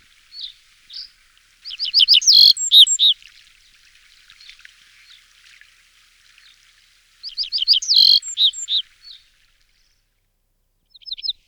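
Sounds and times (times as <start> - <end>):
red-breasted flycatcher song with slurred notes and falling whistles: 1.7 - 3.2, 7.3 - 8.8.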